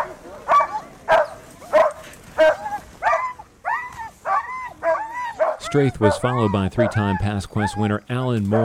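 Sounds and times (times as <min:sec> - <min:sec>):
excited sled dog team barking and yelping in Dawson City: 0:00.0 - 0:08.6
speech: 0:05.7 - 0:08.6.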